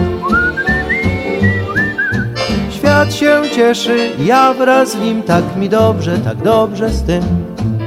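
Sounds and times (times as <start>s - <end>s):
person whistling a short lilting tune: 0.0s - 2.4s
speech: 3.0s - 7.7s.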